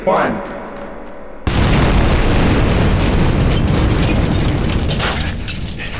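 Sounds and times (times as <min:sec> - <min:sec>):
building explosion: 0:01.5 - 0:05.9
rumbling and crackling debris of a building explosion: 0:01.5 - 0:05.9.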